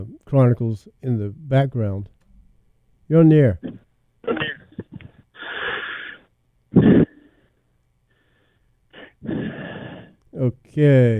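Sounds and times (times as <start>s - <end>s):
speech: 0.0s - 2.2s, 3.1s - 4.4s, 10.4s - 11.1s
heavy raspy breathing of a caller over a phone line: 5.0s - 6.3s, 6.9s - 10.2s.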